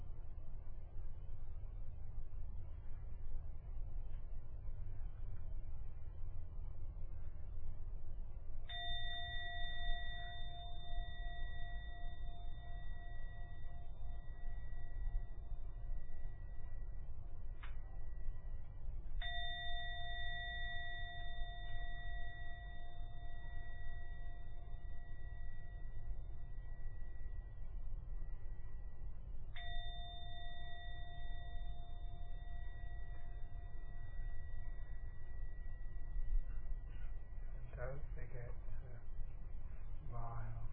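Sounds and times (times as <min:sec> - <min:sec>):
low rumble: 0:00.0 - 0:40.7
meditation gong ringing: 0:08.7 - 0:39.0.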